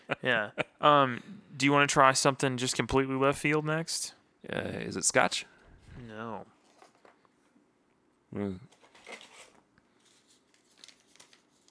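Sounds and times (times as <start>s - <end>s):
speech: 0.2s - 6.5s, 8.3s - 8.8s
paper crinkling and rustling: 6.6s - 7.4s, 8.7s - 11.6s.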